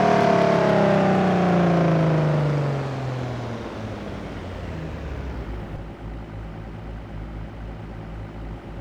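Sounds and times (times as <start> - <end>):
explorer vehicle engine with throttle off slow: 0.0 - 5.8.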